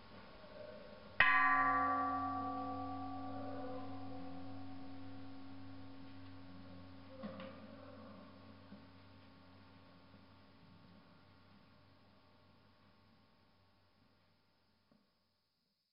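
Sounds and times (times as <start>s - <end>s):
large Buddhist temple bell struck on Mt. Emeishan near Leshan in China: 1.2s - 8.6s.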